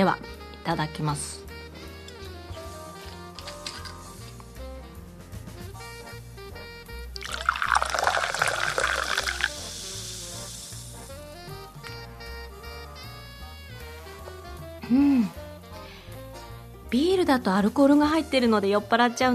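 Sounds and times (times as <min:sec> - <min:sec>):
speech: 0:00.0 - 0:01.4, 0:17.3 - 0:19.3
steady music: 0:00.0 - 0:19.3
sparkling water being poured with a fizzy hiss: 0:07.2 - 0:11.2.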